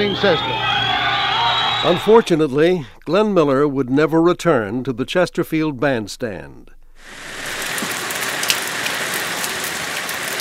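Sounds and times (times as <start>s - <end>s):
speech: 0.0s - 0.8s, 1.8s - 7.3s
steady rain falling: 7.0s - 10.3s.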